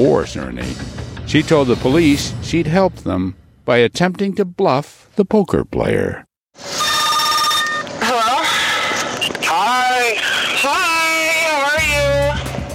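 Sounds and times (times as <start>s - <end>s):
speech: 0.0s - 6.8s
telephone ringing with an electronic tone: 6.6s - 8.1s
voice-like talking on a phone line: 6.8s - 12.4s.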